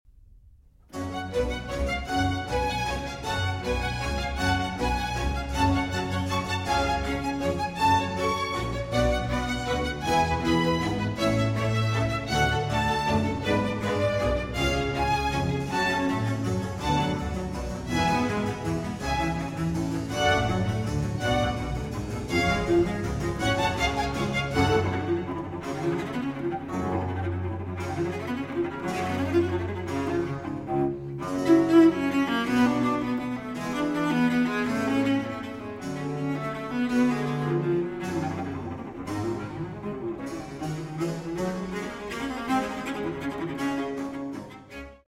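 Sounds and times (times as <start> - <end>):
cello concerto movement with orchestra: 0.9 - 45.0.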